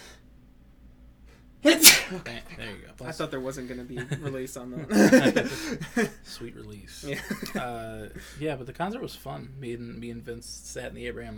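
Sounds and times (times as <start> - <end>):
speech: 1.6 - 11.3
single loud sharp sneeze: 1.7 - 2.4
laughter: 2.1 - 8.6.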